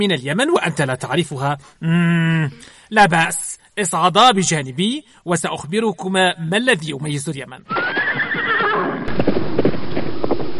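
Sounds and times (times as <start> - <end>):
speech: 0.0 - 8.0
horse whinnying with a wavering high neigh: 7.7 - 9.1
horse hooves clip-clopping: 7.9 - 10.5.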